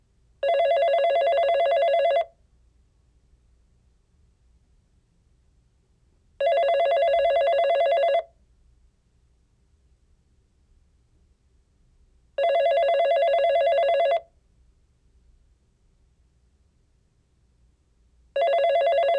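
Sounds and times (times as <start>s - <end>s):
phone: 0.4s - 2.4s, 6.4s - 8.4s, 12.4s - 14.4s, 18.4s - 19.1s.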